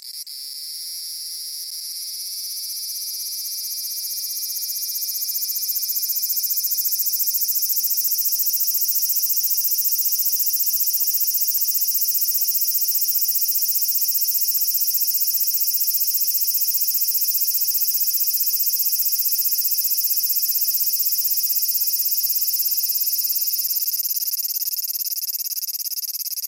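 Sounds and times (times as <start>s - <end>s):
large brown cicada buzzing: 0.2s - 26.4s.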